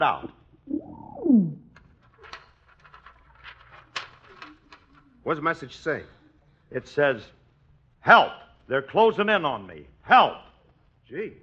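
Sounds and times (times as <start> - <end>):
speech: 0.0 - 0.4, 5.2 - 7.4, 8.0 - 10.5, 11.1 - 11.4
message-carrying pigeon cooing: 0.6 - 1.7
pigeon rustling and soft fluttering: 1.8 - 5.2.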